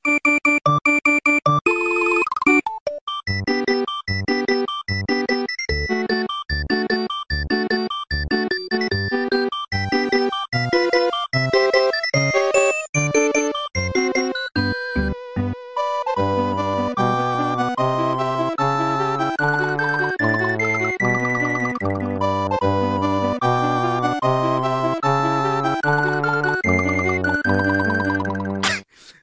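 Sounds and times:
bright electronic video game music with staccato synth notes: 0:00.0 - 0:28.7.

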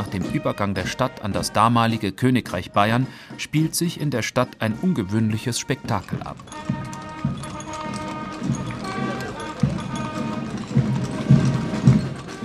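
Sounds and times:
speech: 0:00.1 - 0:07.0
horse hooves clip-clopping as horses pull carriages in a town parade: 0:04.4 - 0:12.4.

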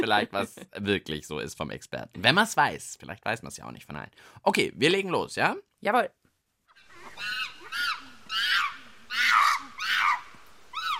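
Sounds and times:
speech: 0:00.0 - 0:06.2
monkeys calling with shrill hoots: 0:06.7 - 0:10.9.

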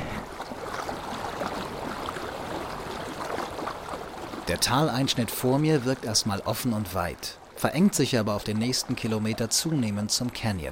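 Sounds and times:
snowmelt water trickling over rocks: 0:00.2 - 0:10.7
speech: 0:04.5 - 0:10.7.

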